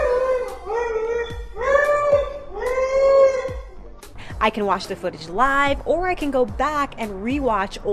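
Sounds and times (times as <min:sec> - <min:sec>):
dog howling: 0:00.0 - 0:03.8
speech: 0:04.4 - 0:07.9.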